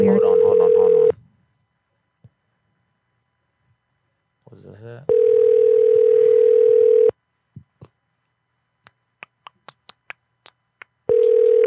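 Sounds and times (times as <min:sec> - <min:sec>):
telephone dial tone: 0:00.4 - 0:01.1, 0:05.1 - 0:07.1, 0:11.1 - 0:11.6
speech: 0:04.6 - 0:05.3
phone keypad clicks being dialed on a call: 0:11.1 - 0:11.6.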